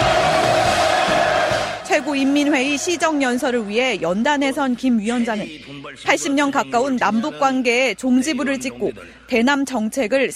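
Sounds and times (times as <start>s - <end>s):
large crowd applauding in a big assembly hall: 0.0s - 4.1s
speech: 2.0s - 10.3s.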